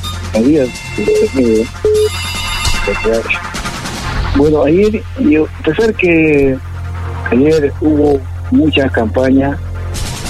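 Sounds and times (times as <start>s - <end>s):
telephone ringing for a caller on a call-in line: 0.0s - 3.3s
short steady beeps: 0.0s - 3.7s
constant hum: 0.0s - 10.2s
speech: 0.4s - 3.6s, 4.4s - 6.7s, 7.3s - 9.7s.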